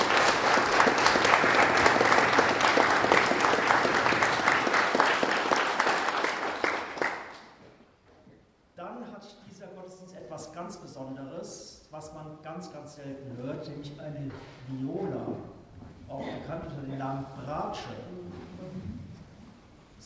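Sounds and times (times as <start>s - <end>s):
concert audience applause after a church choir's performance: 0.0s - 7.6s.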